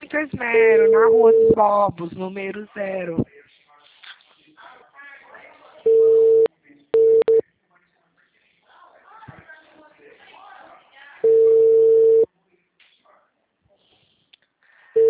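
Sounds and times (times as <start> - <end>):
speech: 0.2 - 3.4
telephone busy signal: 0.8 - 1.6, 5.9 - 7.4, 11.2 - 12.2.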